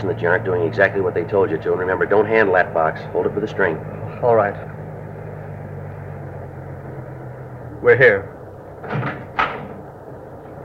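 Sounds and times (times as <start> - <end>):
speech: 0.0 - 4.7, 7.8 - 9.1
low hum: 0.0 - 10.6
car door opening: 8.8 - 9.9.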